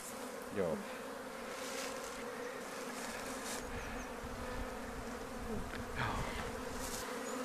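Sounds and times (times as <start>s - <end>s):
honeybees buzzing around a hive: 0.0s - 7.4s
speech: 0.5s - 1.0s.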